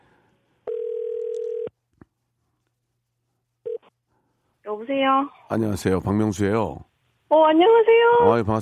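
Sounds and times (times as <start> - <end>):
telephone dial tone on an outgoing call: 0.7 - 1.7
speech: 4.8 - 8.6.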